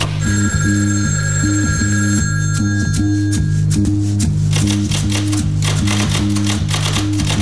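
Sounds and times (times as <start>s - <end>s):
telephone bell ringing: 0.0s - 3.8s
steady rhythmic low musical pattern: 0.0s - 7.3s.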